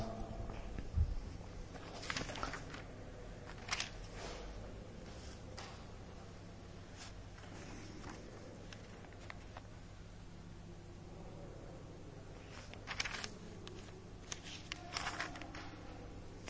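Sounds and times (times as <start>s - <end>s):
low steady hum: 0.0s - 16.4s
thin pages of a Bible rustling and flipping: 1.6s - 5.8s, 6.9s - 9.7s, 12.4s - 16.4s.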